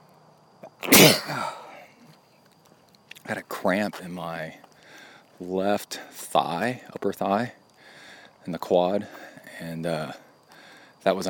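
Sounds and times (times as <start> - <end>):
loud sneeze with a brief sharp inhale: 0.8 - 1.7
speech: 3.3 - 4.6, 5.4 - 7.6, 8.4 - 10.2, 11.0 - 11.2.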